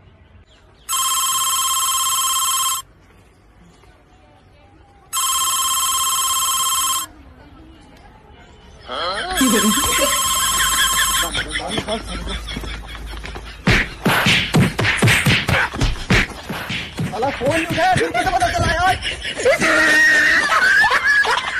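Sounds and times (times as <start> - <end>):
telephone ringing: 0.9 - 2.9, 5.1 - 7.1, 9.4 - 11.3
people talking: 3.6 - 12.6, 17.0 - 21.4
laughter: 8.9 - 14.3, 15.4 - 21.5.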